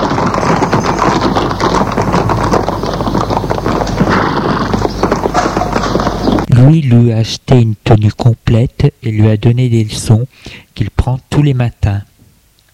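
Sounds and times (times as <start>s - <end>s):
horse hooves clip-clopping at a walking pace while riding: 0.0s - 6.5s
speech: 6.6s - 12.1s.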